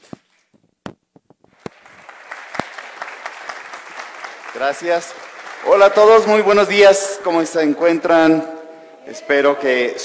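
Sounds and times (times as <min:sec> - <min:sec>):
audience applause from a sizable crowd: 0:01.7 - 0:07.0
speech: 0:04.6 - 0:10.0.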